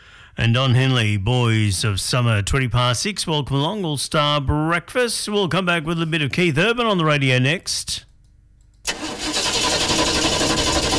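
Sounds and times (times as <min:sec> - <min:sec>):
speech: 0:00.4 - 0:08.1
car engine starting in cooler weather: 0:08.9 - 0:10.9.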